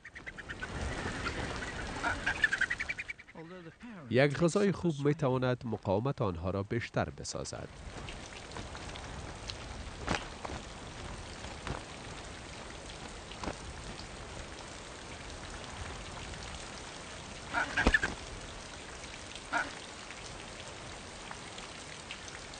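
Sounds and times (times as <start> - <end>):
rain pattering on surfaces: 0.0 - 3.3, 5.8 - 22.5
bird-like call: 0.0 - 3.8
water splashes and drips: 0.1 - 3.3, 7.4 - 22.5
speech: 3.7 - 8.1.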